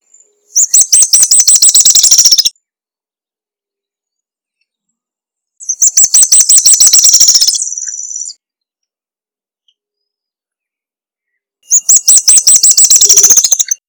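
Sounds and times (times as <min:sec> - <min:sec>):
small woodcreeper calling: 0:00.2 - 0:02.6, 0:05.6 - 0:08.4, 0:11.6 - 0:13.8.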